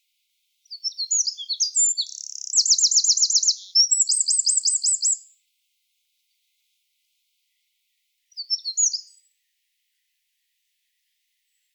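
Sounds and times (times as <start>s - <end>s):
Eurasian wren Troglodytes troglodytes song: 0.6s - 5.3s, 8.3s - 9.3s.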